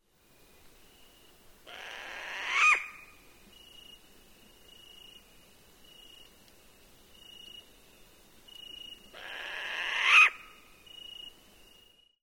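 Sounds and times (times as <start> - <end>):
pueo owl: 1.7 - 3.2, 9.1 - 10.6.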